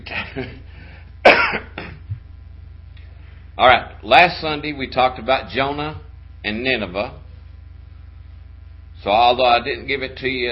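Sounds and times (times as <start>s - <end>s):
low steady hum: 0.0s - 10.5s
speech: 0.4s - 0.7s, 3.6s - 7.2s, 9.0s - 10.5s
person with a slight cold coughing: 1.2s - 2.2s.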